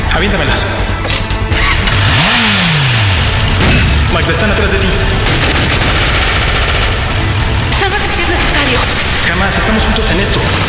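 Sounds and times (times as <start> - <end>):
speech: 0.2 - 1.0, 4.1 - 6.0, 8.7 - 10.6
motorcycle engine starting and revving: 1.1 - 10.6.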